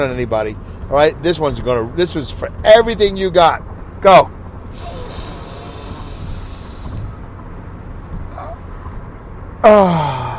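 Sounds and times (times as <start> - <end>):
speech: 0.0 - 4.9, 9.6 - 10.2
deep exhale through the mouth during a guided breathing exercise: 4.7 - 7.2
loud voiced exclamation with a falling pitch: 4.8 - 6.2.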